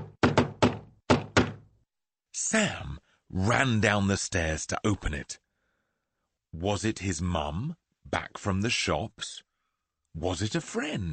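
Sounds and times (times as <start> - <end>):
loud heavy knocks on a door: 0.0 - 1.7
speech: 2.4 - 5.4, 6.5 - 9.5, 10.1 - 11.1.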